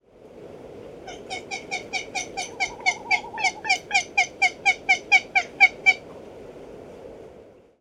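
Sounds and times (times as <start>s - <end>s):
Great Frigatebird Fregata minor palmerstoni calling: 1.0s - 6.0s.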